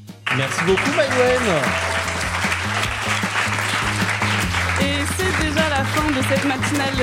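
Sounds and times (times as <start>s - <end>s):
low musical line playing: 0.0s - 7.0s
loud sustained applause from a crowd: 0.2s - 7.0s
speech: 0.4s - 2.0s, 5.8s - 7.0s.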